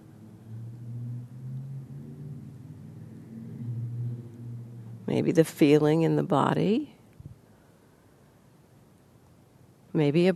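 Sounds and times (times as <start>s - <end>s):
car passing outside with low engine rumble: 0.0s - 6.3s
speech: 5.1s - 6.9s, 10.0s - 10.3s.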